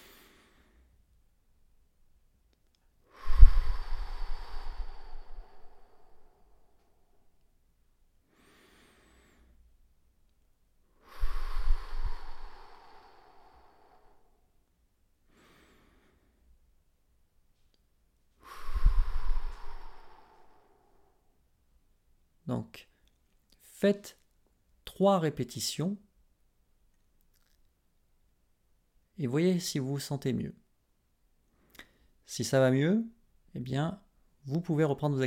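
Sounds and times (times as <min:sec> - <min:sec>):
slow deep breathing: 0:00.0 - 0:01.0, 0:03.0 - 0:07.5, 0:08.2 - 0:09.8, 0:10.9 - 0:16.7, 0:18.3 - 0:21.5
speech: 0:22.5 - 0:22.9, 0:23.8 - 0:24.2, 0:25.0 - 0:26.0, 0:29.2 - 0:30.6, 0:32.3 - 0:35.2.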